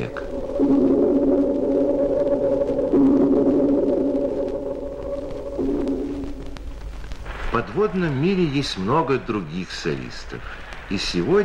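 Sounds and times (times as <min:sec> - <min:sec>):
speech: 0:00.0 - 0:00.9, 0:07.7 - 0:11.4
dolphin echolocation signal as organ-like drone: 0:00.1 - 0:06.6
faint underwater hiss: 0:03.2 - 0:11.4.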